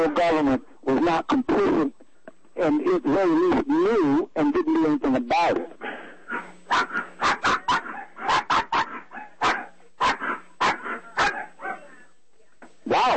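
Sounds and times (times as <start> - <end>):
speech: 0.0 - 2.0, 2.6 - 5.8, 6.4 - 7.1
dogs barking: 5.8 - 12.1.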